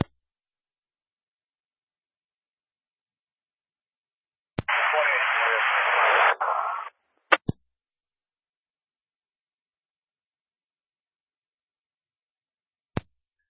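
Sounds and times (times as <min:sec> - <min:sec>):
harsh radio static hiss: 0:04.6 - 0:06.9
radio key-up click: 0:04.6 - 0:07.6.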